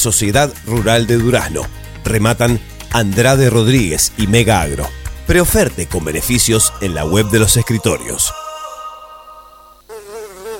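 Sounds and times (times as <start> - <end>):
speech: 0.0 - 8.4
livestock pest flies buzzing: 8.3 - 10.5.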